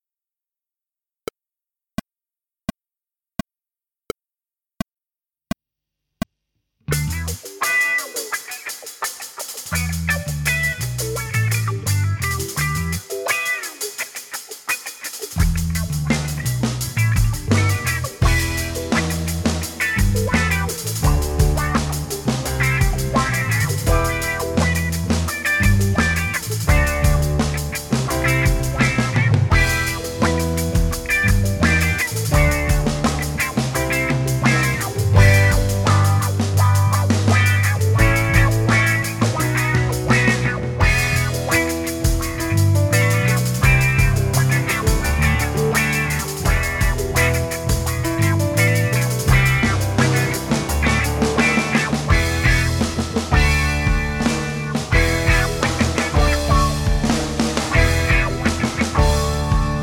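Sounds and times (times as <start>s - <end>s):
drums: 6.9s - 59.8s.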